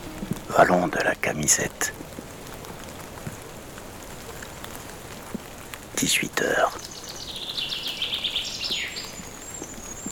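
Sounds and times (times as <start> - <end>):
light rain pattering on surfaces outdoors: 0.0 - 10.0
speech: 0.5 - 2.1, 6.0 - 6.9.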